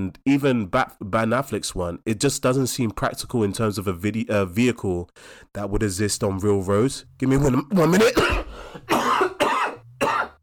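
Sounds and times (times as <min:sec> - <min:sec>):
speech: 0:00.0 - 0:08.9
harsh coughs: 0:07.6 - 0:10.4.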